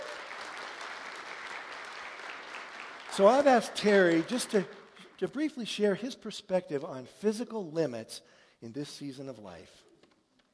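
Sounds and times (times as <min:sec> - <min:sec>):
audience applause for a speaker: 0:00.0 - 0:05.1
speech: 0:03.2 - 0:09.9.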